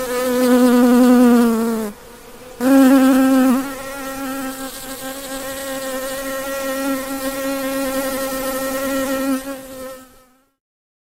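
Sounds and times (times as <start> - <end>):
bee buzzing: 0.0 - 10.6.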